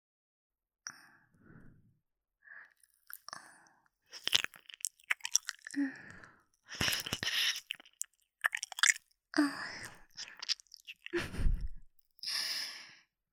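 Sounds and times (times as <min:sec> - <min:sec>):
wet licking and smacking mouth noises of licking an ear: 0:04.2 - 0:05.8, 0:06.7 - 0:09.0, 0:09.8 - 0:11.3.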